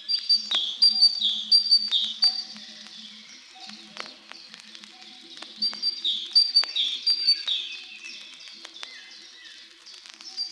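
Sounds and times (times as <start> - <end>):
great tit calling: 0.0 - 2.5, 5.6 - 7.8.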